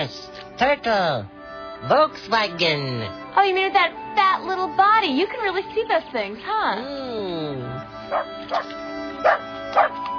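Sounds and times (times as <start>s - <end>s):
speech: 0.0s - 10.0s
dog barking: 8.1s - 10.0s.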